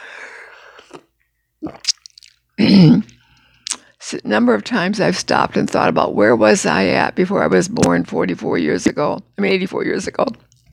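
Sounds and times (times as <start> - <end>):
person sipping water: 0.7 - 2.4
loud full gulp of water: 1.6 - 3.1
speech: 4.3 - 10.4.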